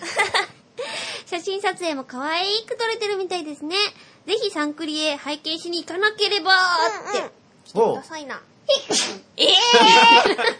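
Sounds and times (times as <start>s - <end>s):
speech: 1.3s - 10.5s
sneeze: 8.7s - 10.0s
people laughing: 9.5s - 10.5s.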